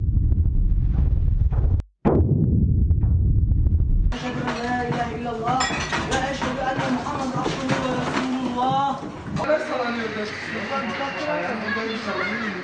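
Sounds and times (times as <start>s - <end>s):
deep rumble of a magnitude 6.8 earthquake at 6.7 km depth: 0.0s - 4.2s
excited voices talking and shouting: 4.1s - 12.6s
glass shaking in an earthquake: 4.4s - 6.8s.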